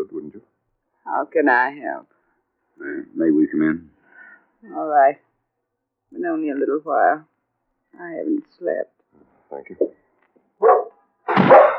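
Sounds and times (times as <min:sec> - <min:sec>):
speech: 0:01.1 - 0:02.1, 0:02.8 - 0:03.9, 0:04.6 - 0:05.2, 0:06.1 - 0:07.3, 0:07.9 - 0:10.0
dog barking: 0:10.6 - 0:11.7.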